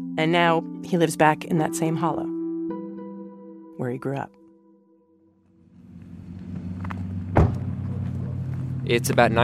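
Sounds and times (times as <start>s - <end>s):
speech: 0.2s - 2.4s, 3.8s - 4.4s, 8.9s - 9.4s
pickup truck engine rumbling as it pulls away: 5.6s - 9.4s
sharp thud: 7.3s - 8.0s.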